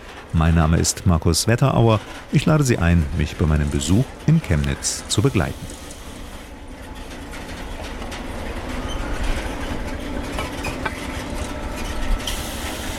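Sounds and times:
freight wagon wheels and couplings clattering: 0.0s - 12.6s
freight wagons being shunted in a rail yard in Chemnitz: 0.0s - 12.6s
speech: 0.3s - 5.8s
faint metallic squeals: 6.4s - 12.6s.

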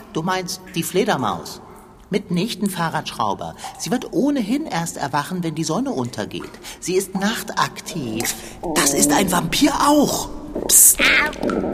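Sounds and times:
speech: 0.2s - 11.7s
hungry person's stomach growling: 8.0s - 11.7s.

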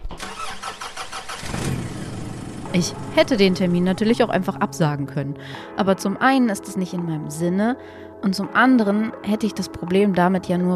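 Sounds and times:
car engine starting and idling: 0.0s - 4.6s
speech: 2.8s - 10.7s.

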